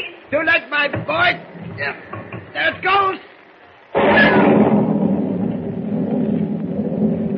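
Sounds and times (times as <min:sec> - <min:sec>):
speech: 0:00.0 - 0:03.3
loud crash of thunder rolling in a storm: 0:03.9 - 0:07.3.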